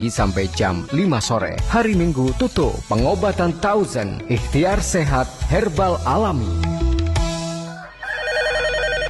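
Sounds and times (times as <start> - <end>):
speech: 0.0 - 6.8
telephone ringing with an electronic ringtone: 8.0 - 9.0.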